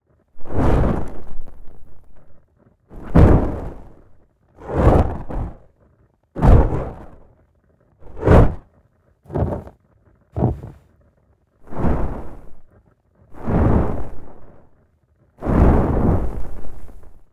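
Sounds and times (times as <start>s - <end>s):
flame torch waving: 0.4s - 5.7s, 6.4s - 7.2s, 8.0s - 8.6s, 9.3s - 9.7s, 10.4s - 10.8s, 11.7s - 12.7s, 13.3s - 14.7s, 15.4s - 17.2s.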